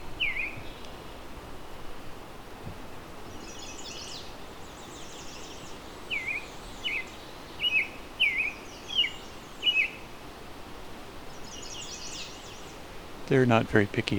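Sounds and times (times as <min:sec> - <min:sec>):
American robin singing whistled phrases: 0:00.0 - 0:01.1, 0:03.3 - 0:10.1, 0:11.2 - 0:14.1
soft steady outdoor hiss: 0:00.0 - 0:14.1
speech: 0:13.3 - 0:14.1.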